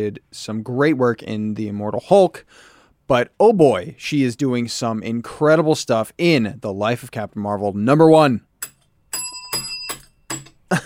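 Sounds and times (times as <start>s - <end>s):
speech: 0.0s - 8.5s
small bell rung weakly: 8.6s - 10.6s.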